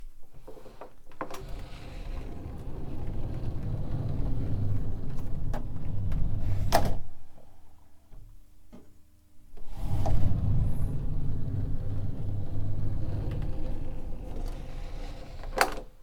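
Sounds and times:
sliding door: 0.5s - 7.2s, 9.5s - 16.0s.

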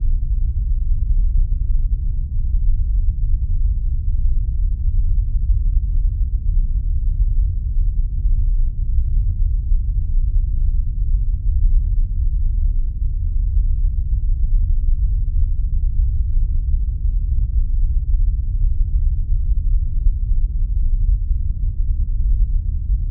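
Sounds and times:
low rumble: 0.0s - 23.0s.

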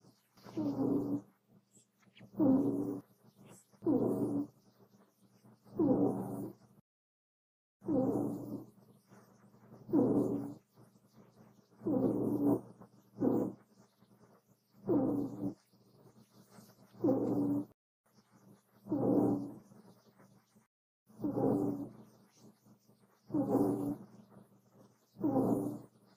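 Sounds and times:
rabbit snoring with raspy wheezing breaths: 0.4s - 1.4s, 2.3s - 3.1s, 3.8s - 4.6s, 5.7s - 6.8s, 7.8s - 10.8s, 11.7s - 13.7s, 14.8s - 17.8s, 18.8s - 19.7s, 21.1s - 22.1s, 23.3s - 26.1s.

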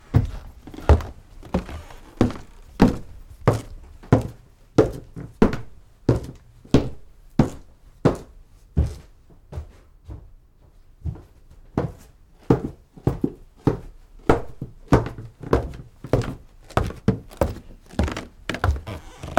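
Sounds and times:
walking on hard floor: 0.1s - 19.3s
floor squeaks: 0.2s - 3.1s, 17.3s - 19.3s.

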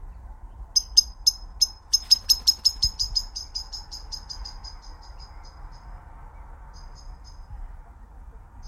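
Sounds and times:
bird chirping while flying away: 0.1s - 7.6s.

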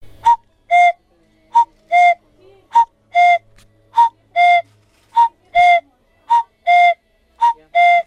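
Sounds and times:
cuckoo call: 0.2s - 1.0s, 1.6s - 2.2s, 2.8s - 3.4s, 4.0s - 8.0s.

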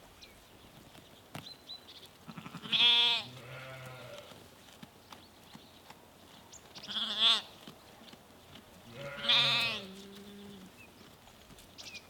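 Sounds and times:
sheep from a small herd in Norway bleating: 2.3s - 4.4s, 6.9s - 7.5s, 8.9s - 10.6s.

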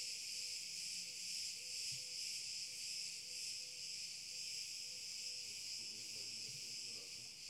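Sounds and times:
cicada song: 0.0s - 7.4s.

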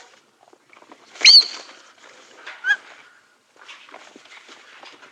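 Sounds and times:
birds lightly flying: 1.1s - 3.0s
birds chirping: 1.2s - 1.8s.

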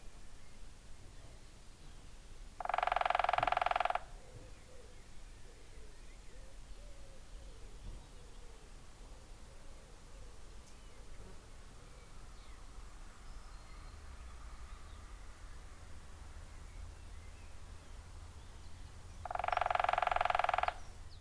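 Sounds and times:
woodpecker drumming in a fast machine-gun roll of taps: 2.6s - 4.4s, 19.2s - 21.2s.

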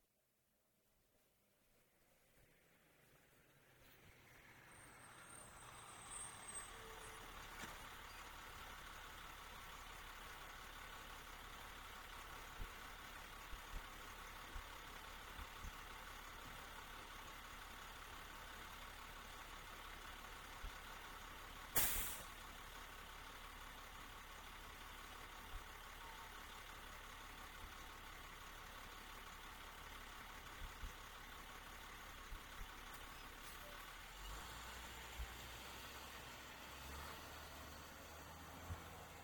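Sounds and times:
school bus stopping: 3.2s - 39.2s.

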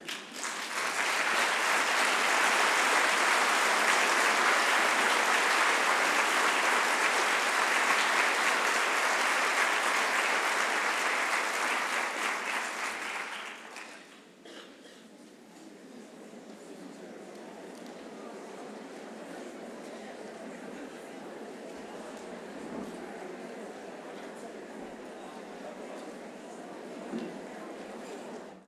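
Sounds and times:
clapping: 0.0s - 14.2s.

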